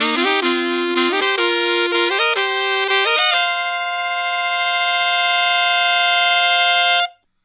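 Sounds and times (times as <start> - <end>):
saxophone section playing in C: 0.0 - 7.2.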